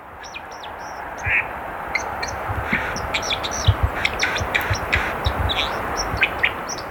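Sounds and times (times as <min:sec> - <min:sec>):
white-throated dipper singing a rapid scratchy warble by the water: 0:00.0 - 0:06.9
flowing water rushing: 0:01.0 - 0:06.9.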